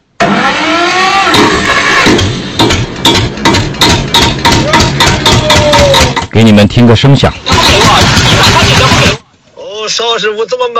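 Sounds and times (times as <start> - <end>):
walking tractor engine running with rapid regular chugging and sharp knocks: 1.3 - 6.5, 7.4 - 9.2
speech: 6.4 - 8.6, 9.9 - 10.7.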